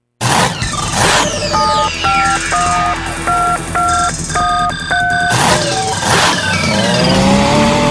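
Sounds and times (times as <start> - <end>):
engine roaring and revving for a tractor pull: 0.2 - 7.8.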